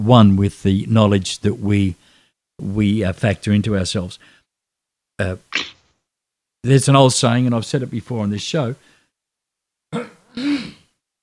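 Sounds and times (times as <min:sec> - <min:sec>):
speech: 0:00.0 - 0:02.0, 0:02.6 - 0:04.4, 0:05.2 - 0:05.7, 0:06.6 - 0:08.9, 0:09.9 - 0:10.8
person clearing throat: 0:05.5 - 0:05.8, 0:09.9 - 0:10.9.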